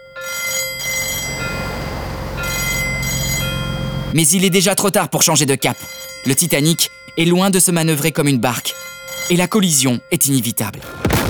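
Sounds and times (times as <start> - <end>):
telephone-style ringing: 0.0 - 4.2
loud ship alarm bell ringing: 0.0 - 10.5
speech: 4.1 - 11.0.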